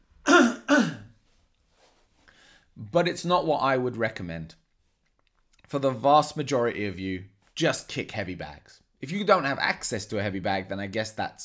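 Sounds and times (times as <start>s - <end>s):
rough throat-clearing coughs: 0.3s - 1.1s
speech: 2.9s - 4.6s, 5.7s - 11.4s.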